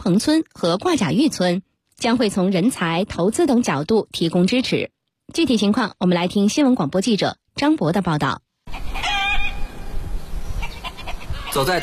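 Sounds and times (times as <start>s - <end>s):
speech: 0.0s - 9.0s, 11.6s - 11.8s
hens clucking in a distant farmyard beside a mountain village road: 8.7s - 9.6s, 10.6s - 11.8s.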